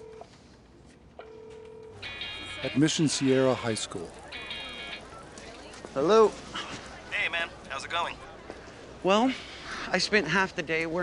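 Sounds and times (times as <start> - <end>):
phone line steady ring in a conference room: 0.0 - 0.3, 1.2 - 5.3
short phone line beep in a conference room: 0.0 - 0.4, 1.2 - 2.8
speech: 2.6 - 4.2, 6.0 - 6.5, 7.8 - 8.3, 9.0 - 11.0.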